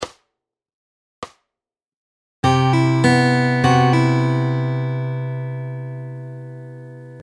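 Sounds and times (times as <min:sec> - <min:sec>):
fingerpicked guitar lick: 0:02.4 - 0:07.2.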